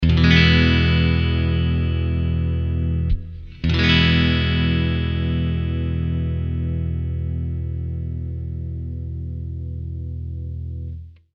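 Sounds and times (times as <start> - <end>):
vintage clean guitar bridge: 0.0 - 11.2.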